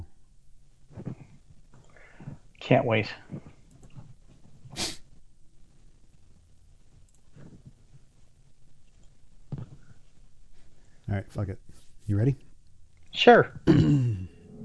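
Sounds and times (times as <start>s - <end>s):
speech: 2.7s - 3.5s, 11.2s - 12.5s, 13.1s - 14.3s
soft breathy sniffs and snorts: 4.7s - 5.1s
stifled sneeze: 4.7s - 5.1s.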